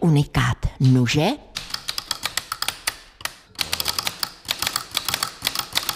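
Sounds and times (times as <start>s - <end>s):
speech: 0.0s - 1.4s
mechanical typewriter clacking: 1.6s - 5.9s.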